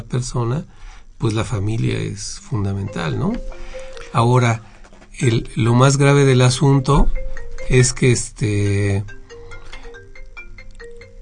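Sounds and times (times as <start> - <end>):
speech: 0.1 - 9.2
doctor's mobile phone ringtone with electronic melody: 2.6 - 4.5, 6.7 - 11.2.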